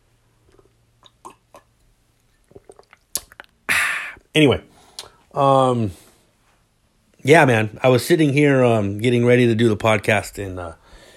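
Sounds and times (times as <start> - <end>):
person slurping and sipping tea: 0.4 - 4.2
speech: 4.4 - 4.7, 5.3 - 6.0, 7.2 - 10.8.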